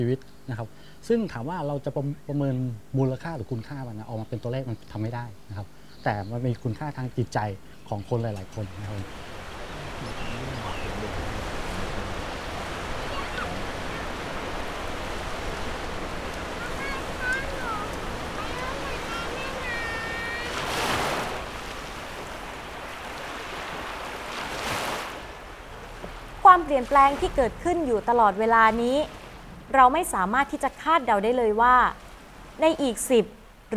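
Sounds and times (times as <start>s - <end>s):
speech: 0.0s - 9.4s, 10.0s - 11.3s, 26.7s - 32.0s, 32.6s - 33.7s
ocean waves breaking on the shore near a sea wall at Pranburi, Thailand: 8.4s - 33.7s.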